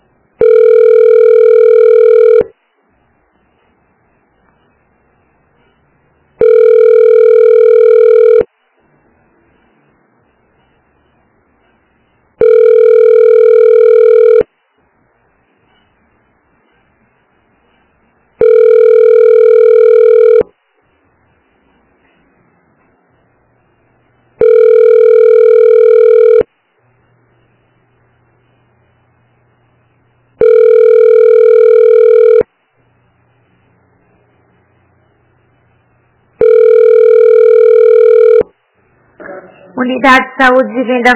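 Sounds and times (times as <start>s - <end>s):
electronic telephone ring tone: 0.4s - 2.5s, 6.4s - 8.5s, 12.4s - 14.5s, 18.4s - 20.5s, 24.4s - 26.5s, 30.4s - 32.5s, 36.4s - 38.5s
speech: 39.9s - 41.1s.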